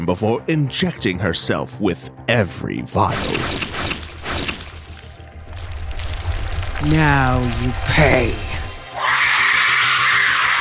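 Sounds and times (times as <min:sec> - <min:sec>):
speech: 0:00.0 - 0:03.9, 0:06.8 - 0:08.5
piercing harsh sonic scream: 0:08.8 - 0:10.5.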